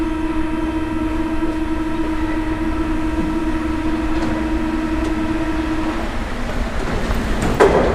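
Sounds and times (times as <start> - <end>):
metro train running underground: 0.0 - 7.9.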